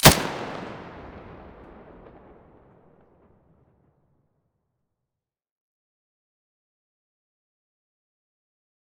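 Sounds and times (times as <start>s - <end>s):
muzzle blast: 0.0s - 2.6s.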